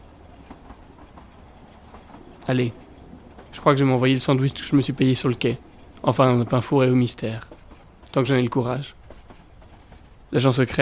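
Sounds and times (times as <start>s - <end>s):
third-class carriage of the Trans-Siberian train rattling on rails: 0.0s - 10.8s
speech: 2.5s - 2.8s, 3.6s - 7.5s, 8.1s - 9.0s, 10.3s - 10.8s.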